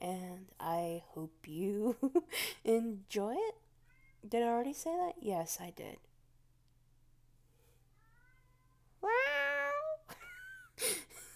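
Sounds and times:
speech: 0.0s - 3.6s, 4.2s - 6.1s, 9.0s - 9.4s
cat meowing at a door: 8.0s - 10.1s.

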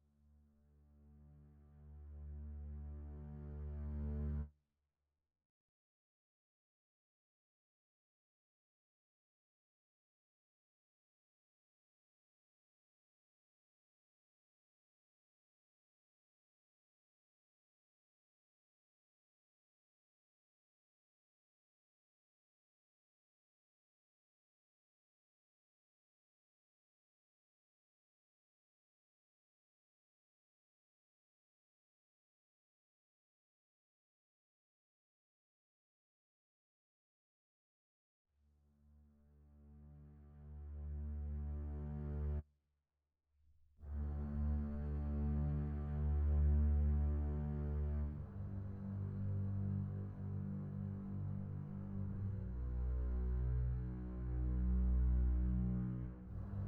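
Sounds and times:
double bass strings: 1.0s - 4.4s, 39.9s - 42.4s, 43.9s - 56.6s.

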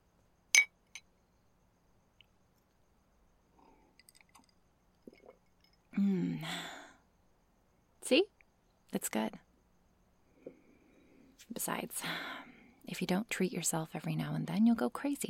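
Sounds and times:
glasses clinking in a toast: 0.6s - 1.0s
speech: 6.0s - 6.7s, 8.1s - 8.3s, 8.9s - 9.5s, 11.5s - 15.2s.

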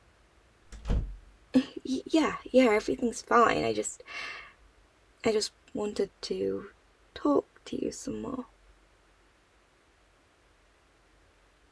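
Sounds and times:
door latch click: 0.7s - 1.2s
door swinging shut with a soft low thud: 0.7s - 1.3s
speech: 1.5s - 4.4s, 5.2s - 8.5s.

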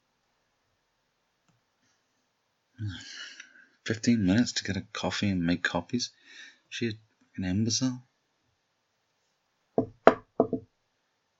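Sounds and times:
speech: 2.8s - 3.2s, 3.9s - 8.1s
soft hesitant knocks on a wooden door: 9.8s - 10.6s.

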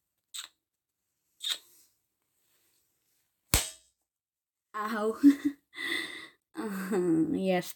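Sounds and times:
hand slapping a cheek: 3.5s - 3.8s
speech: 4.8s - 6.0s, 6.9s - 7.7s.

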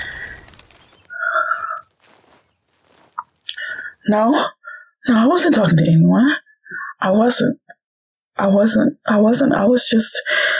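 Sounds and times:
brief sharp chirp of small bird: 0.0s - 2.6s
small bird calling: 0.0s - 4.0s
soft rustling of small bird flying away: 0.0s - 4.1s
speech: 4.1s - 6.4s, 7.0s - 7.7s, 8.4s - 10.5s.

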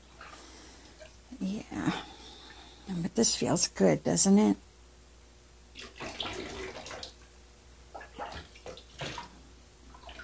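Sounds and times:
speech: 1.4s - 2.1s, 2.9s - 4.7s
water splashing and pouring as someone's back is washed: 5.8s - 7.2s, 7.9s - 10.2s.

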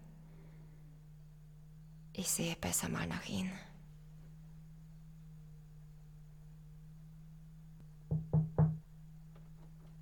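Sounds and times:
speech: 2.2s - 3.7s
knocking on a door: 8.1s - 8.9s.

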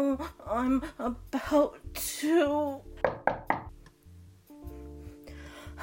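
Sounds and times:
speech: 0.1s - 2.8s
knocking on a door: 3.0s - 3.8s.

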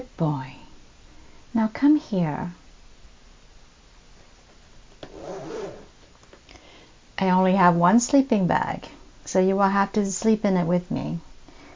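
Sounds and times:
speech: 0.0s - 0.6s, 1.5s - 2.6s, 7.2s - 11.3s
tent zipper being pulled shut during a thunderstorm: 5.0s - 6.0s.

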